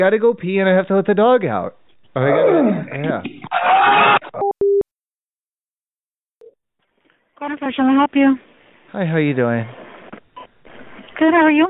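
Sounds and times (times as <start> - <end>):
speech: 0.0 - 4.1, 7.4 - 9.8, 11.2 - 11.6
telephone emitting two short electronic beeps: 4.4 - 4.8
talking voices on the telephone line: 7.4 - 11.6.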